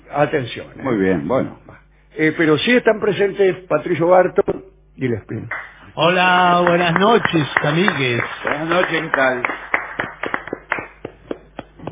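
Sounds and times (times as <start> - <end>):
speech: 0.1 - 9.6
hosts clapping in a studio: 5.5 - 5.8, 6.5 - 11.8.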